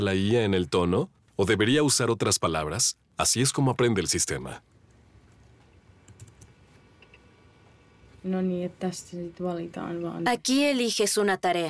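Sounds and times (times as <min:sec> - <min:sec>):
speech: 0:00.0 - 0:04.8, 0:08.2 - 0:11.6
soft keyboard typing: 0:04.8 - 0:07.2
scattered computer clicks: 0:04.9 - 0:07.3.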